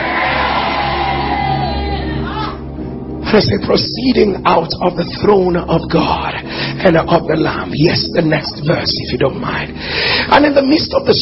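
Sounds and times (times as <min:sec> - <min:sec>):
large crowd shouting amen together: 0:00.0 - 0:02.3
speech: 0:03.3 - 0:11.2.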